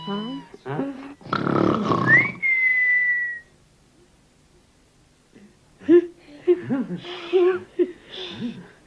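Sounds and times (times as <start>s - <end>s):
people talking: 0.0s - 2.4s, 5.4s - 8.7s
sleeper snoring roughly: 1.2s - 2.2s
person whistling at a snoring sleeper: 2.1s - 3.5s.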